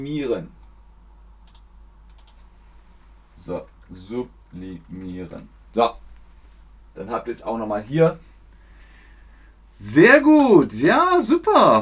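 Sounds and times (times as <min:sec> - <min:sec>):
speech: 0:00.0 - 0:00.6, 0:03.4 - 0:06.0, 0:07.0 - 0:08.3, 0:09.7 - 0:11.8
steady low hum: 0:00.0 - 0:11.8
faint typing on a computer keyboard: 0:01.5 - 0:02.4, 0:03.6 - 0:05.5.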